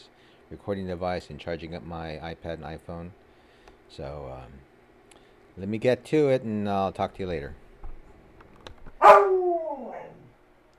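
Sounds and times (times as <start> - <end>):
speech: 0.5 - 3.2, 3.9 - 4.7, 5.6 - 7.6
dog barking and moaning: 9.0 - 10.3.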